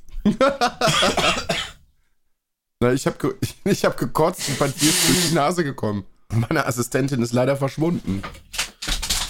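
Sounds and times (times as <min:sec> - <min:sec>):
speech: 0:00.2 - 0:01.6, 0:02.8 - 0:08.4
laughter: 0:00.3 - 0:01.0
person blowing nose with honking snorts: 0:04.4 - 0:05.4.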